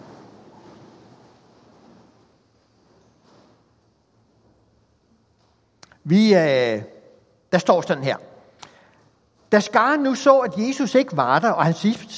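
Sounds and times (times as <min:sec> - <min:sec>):
rustle of many people shuffling and standing up: 0:00.0 - 0:05.8
speech: 0:06.1 - 0:06.9, 0:07.5 - 0:08.3, 0:09.5 - 0:12.1.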